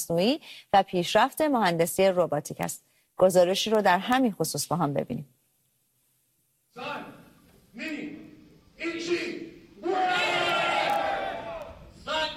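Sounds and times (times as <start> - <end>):
speech: 0.0 - 5.4, 6.8 - 7.2, 8.8 - 10.4
crowd cheering and shouting at robot fight: 9.8 - 12.3.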